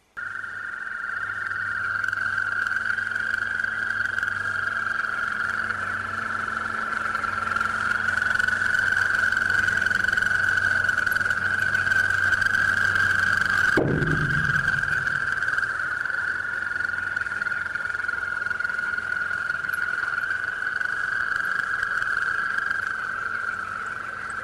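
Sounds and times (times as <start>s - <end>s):
chorus of frogs croaking at a reservoir's edge: 0.0s - 24.4s
brief low thud: 13.8s - 15.6s.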